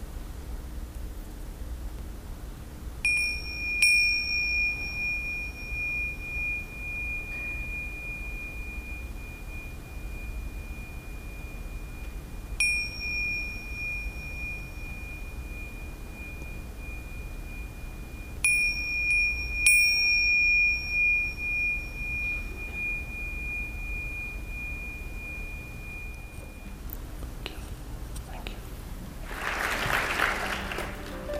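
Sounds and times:
faint hiss: 0.0 - 31.3
ceremonial bell struck to end a session: 3.1 - 26.8.

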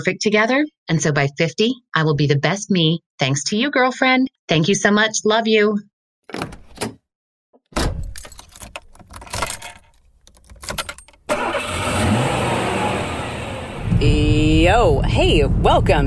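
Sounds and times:
speech: 0.0 - 6.9, 14.0 - 16.0
keys jangling: 8.0 - 11.2
car engine cranking, starting and idling: 11.2 - 16.0.

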